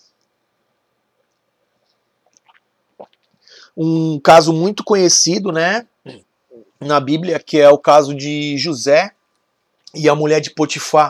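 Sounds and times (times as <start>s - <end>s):
soft mouth and lip sounds: 1.2s - 3.5s
person gulping a small sip of water: 2.2s - 3.4s
speech: 3.8s - 9.2s, 10.0s - 11.0s.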